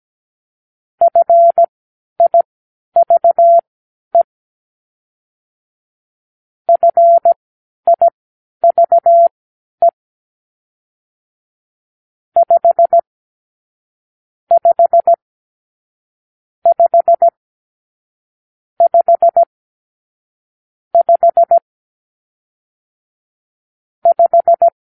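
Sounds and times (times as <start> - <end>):
morse code for numeral five: 1.0 - 2.4, 3.0 - 3.6, 6.7 - 10.0, 12.4 - 13.0, 14.5 - 15.2, 16.7 - 17.4, 18.8 - 19.5, 21.0 - 21.6, 24.0 - 24.8.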